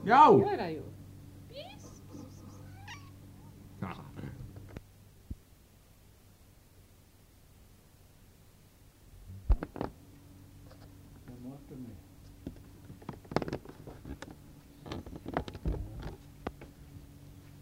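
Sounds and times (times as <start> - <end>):
speech: 0.0 - 0.9
low hum: 0.0 - 6.2, 8.9 - 17.6
human voices: 1.5 - 4.5
cat meowing: 2.5 - 3.5.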